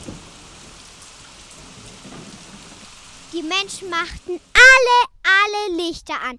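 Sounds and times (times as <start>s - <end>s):
low thunder rumbling: 0.0s - 4.6s
steady dense rain pouring down: 0.0s - 5.1s
speech: 3.4s - 6.3s.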